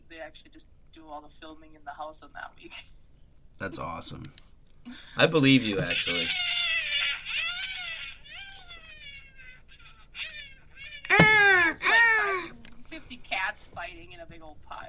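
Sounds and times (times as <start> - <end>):
speech: 0.3 - 3.0, 3.6 - 6.6, 13.5 - 14.8
cat meowing and yowling in wavering cries: 11.1 - 12.5
laughter: 11.1 - 12.5.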